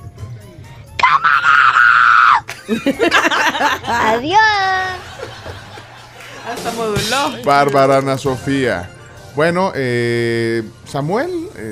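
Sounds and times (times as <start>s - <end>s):
waiter's high-pitched scream: 1.0s - 2.5s
laughter: 2.5s - 7.7s
speech: 2.7s - 5.1s, 6.5s - 11.7s.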